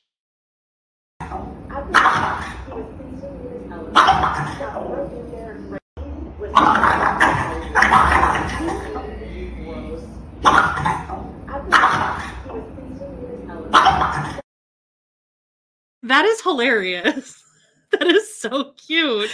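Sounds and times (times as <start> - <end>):
French bulldog barking: 1.9 - 2.7, 3.9 - 4.8, 6.6 - 8.8, 10.4 - 12.5, 13.7 - 14.4
speech: 16.1 - 19.3
laughter: 17.9 - 18.4.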